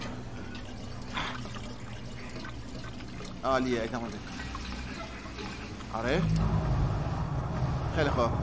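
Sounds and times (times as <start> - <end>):
water pouring into a glass jar: 0.2 - 6.3
speech: 3.4 - 4.4, 6.0 - 6.8, 8.0 - 8.4.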